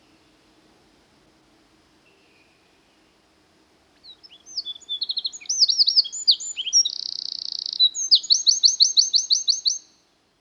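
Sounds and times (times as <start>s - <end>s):
Eurasian wren song with high notes, buzzy trill and chirps: 4.0s - 10.0s.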